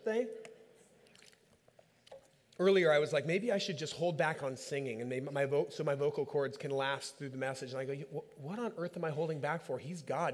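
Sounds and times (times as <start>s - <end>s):
speech: 0.1s - 0.5s, 2.6s - 10.3s
person sipping water: 0.4s - 2.6s
gulp of water: 0.8s - 2.5s.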